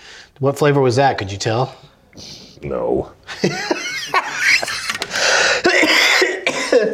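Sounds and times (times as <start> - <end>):
speech: 0.4 - 4.2
laughter: 3.3 - 5.2
person coughing harshly: 5.6 - 6.9.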